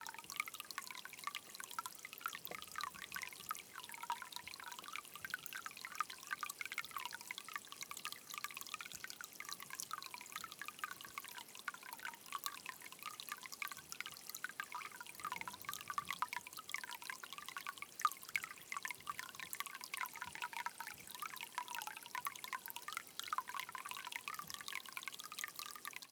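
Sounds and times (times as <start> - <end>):
very gentle spring water flowing in Chapada dos Veadeiros: 0.0 - 26.1.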